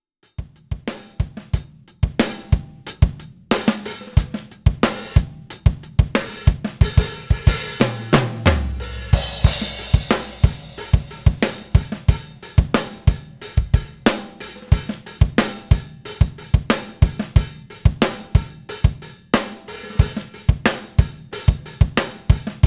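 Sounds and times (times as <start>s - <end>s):
syncopated rock funk music: 0.5s - 22.6s.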